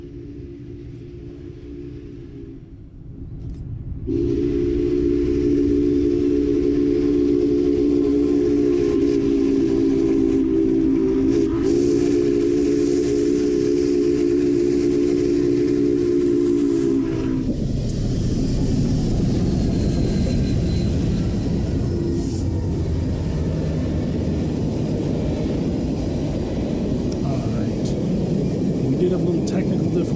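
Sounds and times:
steam locomotive whistle blowing: 0.0s - 2.8s, 4.1s - 17.7s, 19.2s - 22.8s
steam hissing: 4.1s - 30.1s.

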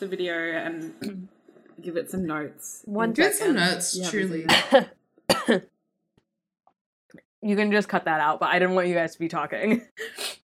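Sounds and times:
speech: 0.0s - 5.7s, 7.4s - 10.4s
person coughing: 4.5s - 5.6s.

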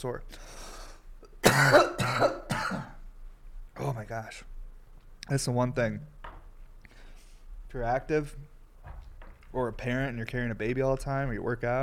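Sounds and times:
speech: 0.0s - 0.6s, 1.5s - 2.4s, 3.8s - 4.6s, 5.3s - 6.2s, 7.7s - 8.5s, 9.5s - 11.8s
harsh coughs: 1.3s - 3.0s.

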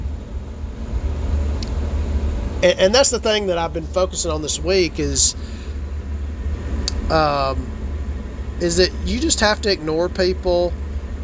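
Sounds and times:
low engine rumble of a car rolling slowly past: 0.0s - 11.2s
speech: 2.6s - 5.6s, 7.1s - 7.7s, 8.6s - 10.8s.

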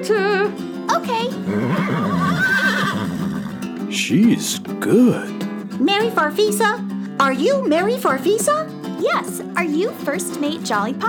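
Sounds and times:
speech: 0.0s - 2.2s, 3.9s - 11.0s
person imitating a horse neigh: 1.2s - 3.8s
laughter: 1.4s - 5.2s.

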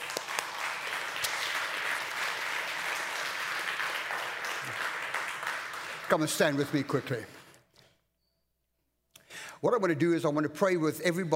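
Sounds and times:
crowd applauding during a morning sermon: 0.0s - 7.6s
speech: 6.1s - 7.4s, 9.6s - 11.3s.

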